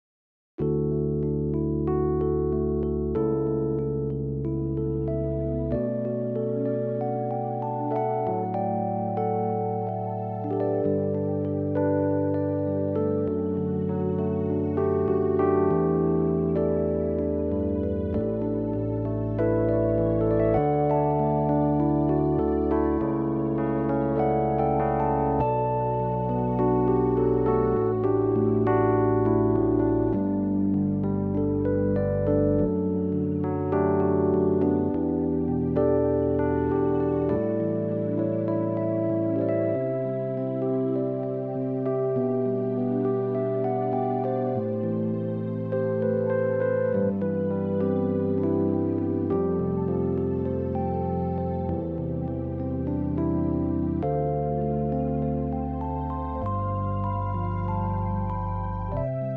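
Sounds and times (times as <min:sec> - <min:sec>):
Rhodes synth: 0:00.6 - 0:59.3.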